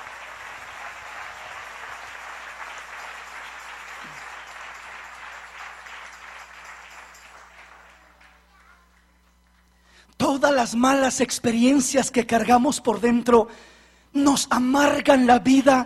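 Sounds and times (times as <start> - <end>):
audience applauding: 0.0 - 9.1
speech: 10.3 - 15.8.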